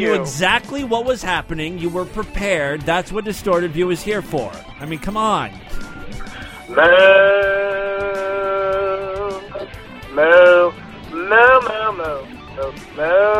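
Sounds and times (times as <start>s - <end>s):
speech: 0.0s - 7.5s, 10.2s - 13.3s
caller imitating a cow mooing: 6.7s - 13.3s.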